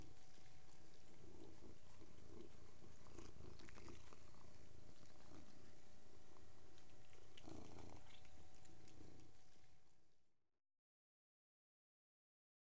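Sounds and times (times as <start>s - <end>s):
three domestic cats purring while eating: 0.0s - 10.4s
soft clicking and chewing-like ticks of cats eating: 1.9s - 5.8s, 6.4s - 9.8s.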